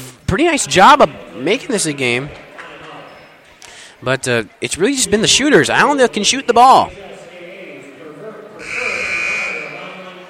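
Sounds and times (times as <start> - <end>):
speech: 0.3 - 2.4, 4.0 - 7.1
basketball arena buzzer ending a timeout: 8.6 - 10.0
crowd murmuring in a basketball arena: 8.6 - 10.2.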